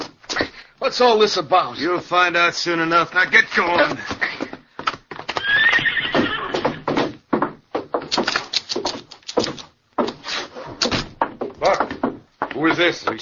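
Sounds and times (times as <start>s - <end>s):
speech: 0.8s - 4.2s, 12.6s - 13.2s
hoofbeats clip-clopping on a hard surface: 1.9s - 10.2s, 10.8s - 13.2s
horse whinnying: 5.4s - 6.9s.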